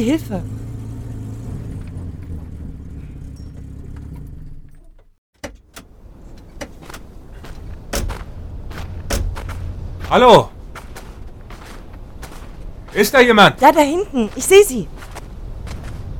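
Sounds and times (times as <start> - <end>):
speech: 0.0 - 0.6, 10.1 - 10.5, 13.0 - 15.0
car engine rumble while halting on a narrow passage: 0.0 - 16.1
sharp clicks and knocks: 3.4 - 9.6.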